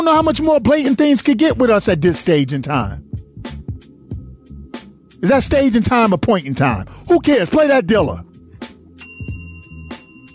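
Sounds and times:
speech: 0.0 - 3.2, 5.2 - 8.3
bell struck with a bright high ring: 9.0 - 10.3.

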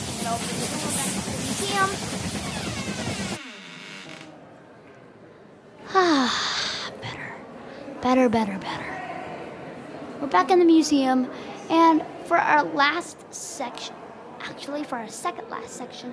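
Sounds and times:
steam train engine rumbling and hissing in an engine room: 0.0 - 3.4
speech: 0.3 - 0.8, 1.6 - 2.5, 8.1 - 8.8, 10.3 - 14.0, 14.6 - 16.1.

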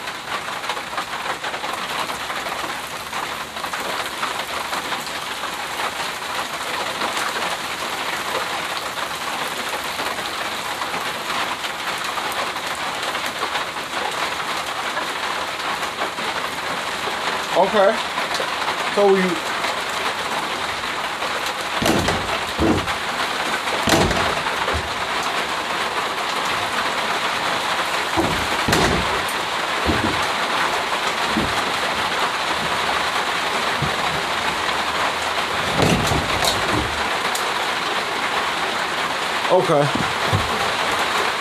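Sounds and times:
heavy rain falling outside: 0.0 - 41.3
water drips and thuds striking surfaces: 17.6 - 38.4, 39.6 - 41.3
speech: 17.7 - 18.2, 19.0 - 19.5, 39.7 - 40.0.

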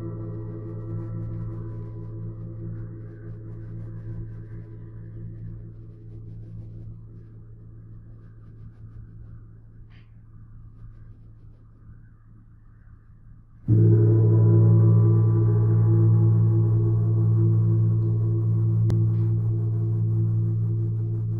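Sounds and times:
gong ringing with deep low tone: 13.7 - 21.3.

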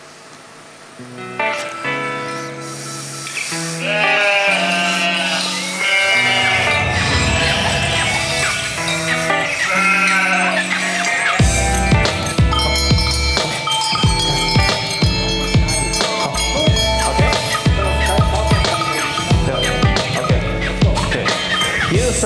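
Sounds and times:
rushing breezy outdoor noise on an alpine pasture: 0.0 - 22.2
sheep bleating on an alpine pasture in Switzerland: 3.4 - 11.4, 15.2 - 22.2.

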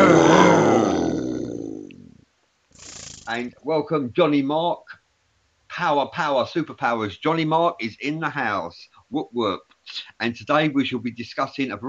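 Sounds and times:
lion roar: 0.0 - 2.2
speech: 0.1 - 0.5, 3.4 - 5.0, 5.8 - 11.8.

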